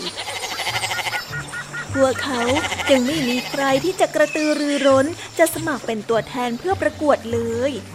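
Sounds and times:
goat bleating with a wavering quavering cry: 0:00.0 - 0:01.4, 0:02.1 - 0:03.9
speech: 0:02.0 - 0:07.9.

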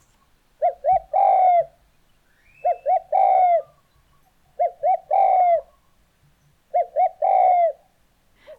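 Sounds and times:
spotted dove cooing call: 0:00.0 - 0:01.8, 0:02.6 - 0:03.9, 0:04.5 - 0:05.9, 0:06.7 - 0:08.0.

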